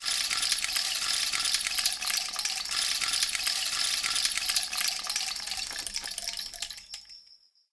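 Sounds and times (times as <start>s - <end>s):
rainstick: 0.0s - 7.3s.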